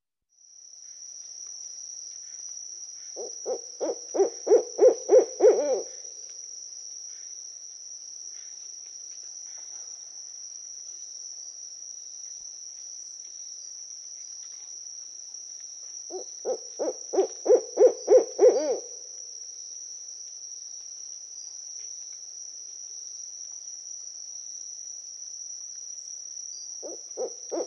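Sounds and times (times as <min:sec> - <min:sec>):
owl calling: 0:03.2 - 0:06.1, 0:16.1 - 0:19.0, 0:26.8 - 0:27.6.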